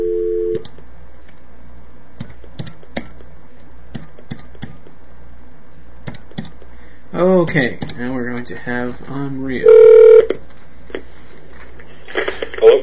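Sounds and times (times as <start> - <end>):
telephone dial tone: 0.0 - 0.6, 9.7 - 10.3
speech: 7.2 - 10.4.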